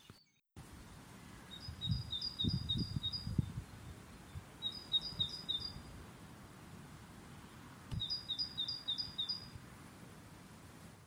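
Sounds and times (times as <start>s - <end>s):
great tit singing: 1.5s - 5.8s, 8.0s - 9.5s.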